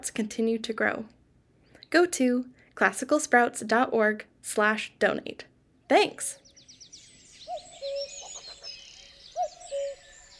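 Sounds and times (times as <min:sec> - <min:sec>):
speech: 0:00.0 - 0:01.2, 0:01.9 - 0:06.4
small birds chirping and twittering outdoors: 0:06.2 - 0:10.3
cuckoo giving its two-note call: 0:06.4 - 0:10.3.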